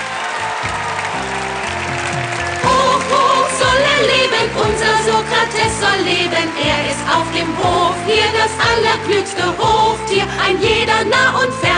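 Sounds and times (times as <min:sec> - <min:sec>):
audience applause: 0:00.0 - 0:08.5
speech: 0:04.7 - 0:11.7.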